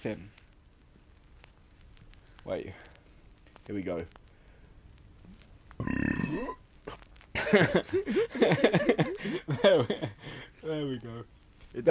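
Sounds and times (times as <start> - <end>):
speech: 0.0 - 0.4, 2.4 - 2.9, 3.7 - 4.2, 5.8 - 6.6, 7.4 - 11.9
loud drawn-out burp: 5.8 - 6.6
several people bursting into bubbly laughter: 7.4 - 10.2.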